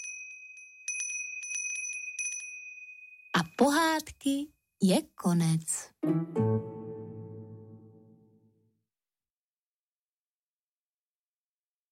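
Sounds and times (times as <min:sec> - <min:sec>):
small bell ringing: 0:00.0 - 0:03.6
speech: 0:03.6 - 0:06.7.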